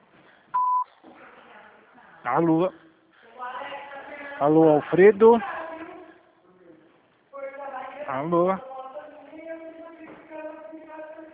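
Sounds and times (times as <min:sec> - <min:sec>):
voicemail beep: 0:00.6 - 0:00.9
speech: 0:02.2 - 0:02.8, 0:04.4 - 0:05.5, 0:08.2 - 0:08.7.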